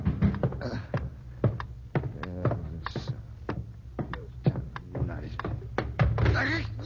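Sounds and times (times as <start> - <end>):
person hurrying downstairs on wooden stairs: 0.0 - 6.8.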